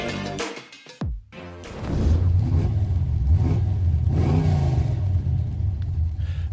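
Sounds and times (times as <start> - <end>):
car engine in a racing video game revving: 1.7 - 6.2.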